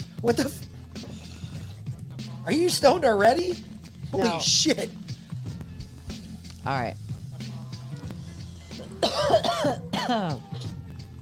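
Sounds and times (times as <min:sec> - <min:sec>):
speech: 0:00.2 - 0:00.7, 0:02.4 - 0:05.0, 0:06.6 - 0:07.0, 0:09.1 - 0:10.6
voiced throaty rasp: 0:00.9 - 0:01.9, 0:08.0 - 0:09.0
harsh coughs: 0:08.6 - 0:10.8.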